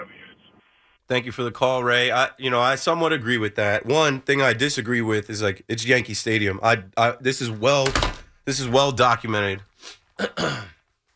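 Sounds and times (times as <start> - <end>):
speech: 1.1 - 10.8
person blowing nose: 9.8 - 10.2.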